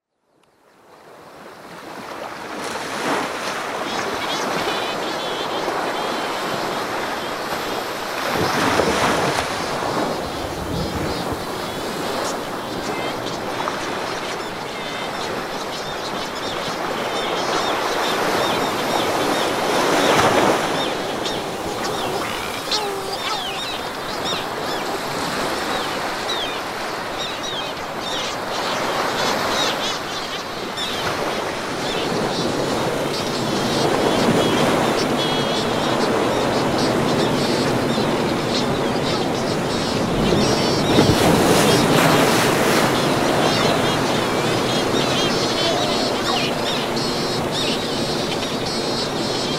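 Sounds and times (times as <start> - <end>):
coastal ambience at Ilheu Vila Franca: 0.6 - 49.5.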